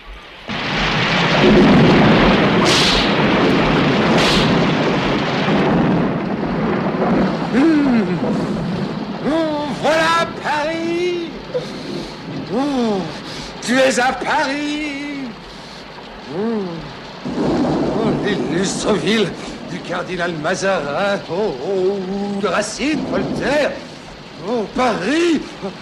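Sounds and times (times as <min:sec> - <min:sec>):
dense loud roar of rain in a thunderstorm: 0:00.0 - 0:25.8
deep rumbling thunder: 0:00.5 - 0:25.8
speech: 0:01.4 - 0:02.9, 0:13.7 - 0:15.0, 0:18.3 - 0:25.8
sharp bursts: 0:02.5 - 0:04.9.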